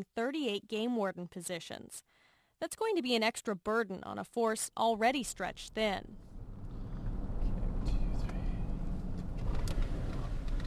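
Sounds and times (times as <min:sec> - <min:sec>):
speech: 0:00.0 - 0:06.3
game warden's pickup truck rumbling as it rolls to a stop: 0:06.2 - 0:10.6.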